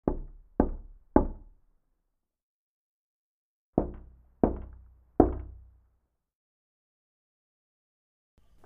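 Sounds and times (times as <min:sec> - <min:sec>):
knocking on a door by hand: 0:00.0 - 0:01.6, 0:03.8 - 0:05.7.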